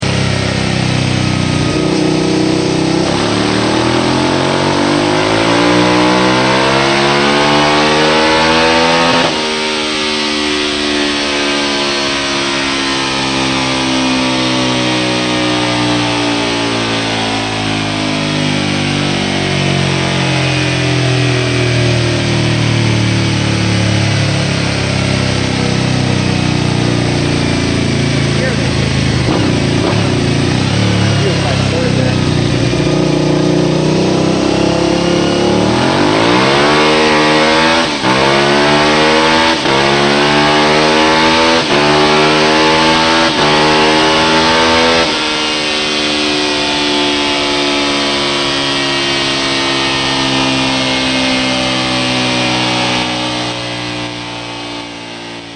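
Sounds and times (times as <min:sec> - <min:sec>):
1999 Suzuki TL1000S motorcycle with Yoshimura exhaust cans: 0:00.0 - 0:55.5.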